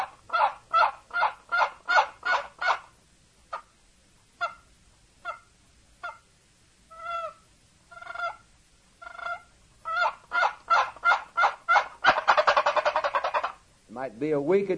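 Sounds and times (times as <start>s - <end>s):
imitated tom turkey gobble call: 0.0s - 2.9s, 3.5s - 3.8s, 4.4s - 6.3s, 6.9s - 13.6s
speech: 14.0s - 14.7s.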